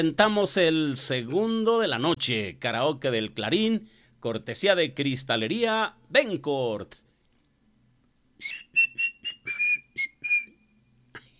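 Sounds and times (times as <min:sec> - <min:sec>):
speech: 0:00.0 - 0:07.0, 0:08.4 - 0:08.6
faint noise: 0:00.0 - 0:11.3
whistled tune: 0:08.4 - 0:10.9.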